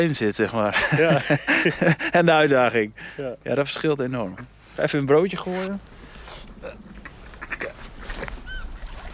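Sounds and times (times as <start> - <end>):
speech: 0.0 - 6.9
laughter: 0.7 - 2.2
gulls calling by a jetty: 6.4 - 9.1.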